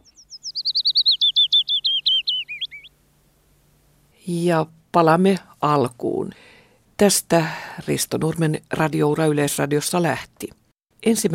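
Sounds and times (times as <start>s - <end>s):
chaffinch or willow warbler singing: 0.0s - 3.0s
speech: 4.3s - 11.3s.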